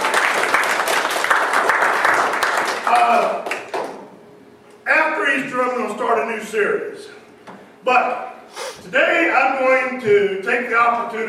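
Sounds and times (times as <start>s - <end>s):
crowd applauding: 0.0s - 4.0s
speech: 5.6s - 7.2s, 7.8s - 8.3s, 8.9s - 11.2s.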